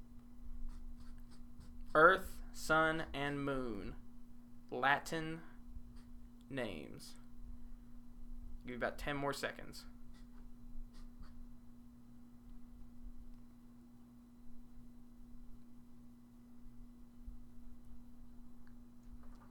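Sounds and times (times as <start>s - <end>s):
steady low electrical hum: 0.0s - 19.4s
pen scratching on paper as quiz answers are written: 0.7s - 2.0s
speech: 2.0s - 4.0s, 4.7s - 5.5s, 6.5s - 7.2s, 8.7s - 9.9s.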